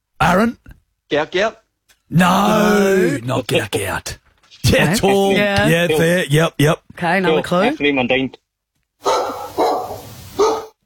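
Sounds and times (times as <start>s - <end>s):
speech: 0.3s - 8.4s
dog barking: 9.0s - 10.8s.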